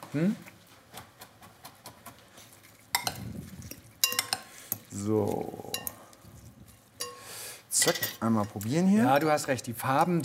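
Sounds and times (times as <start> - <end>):
speech: 0.1 - 0.5, 5.0 - 5.7, 7.8 - 10.2
clattering and stirring: 1.1 - 10.2
utensils clinking and scraping as chili peppers are added to a filling: 2.6 - 6.1, 7.8 - 10.2.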